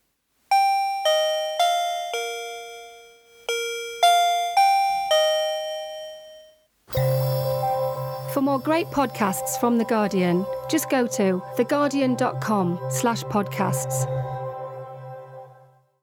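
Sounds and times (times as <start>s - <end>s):
new doorbell chiming a bright ringing melody: 0.5s - 12.9s
speech: 8.4s - 14.2s.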